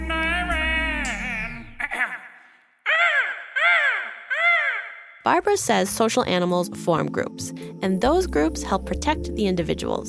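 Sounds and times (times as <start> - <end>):
flock of seagulls calling: 0.1 - 5.3
speech: 5.3 - 10.0.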